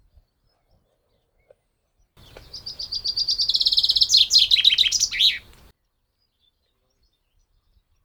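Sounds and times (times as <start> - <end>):
common chaffinch Fringilla coelebs singing: 2.2 - 5.7.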